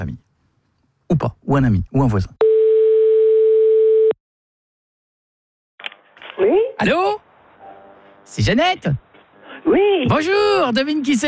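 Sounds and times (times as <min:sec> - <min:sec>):
speech: 0:00.0 - 0:00.2, 0:01.1 - 0:02.4, 0:06.4 - 0:07.2, 0:08.3 - 0:09.0, 0:09.6 - 0:11.2
telephone ringing tone while placing a call: 0:02.4 - 0:04.2.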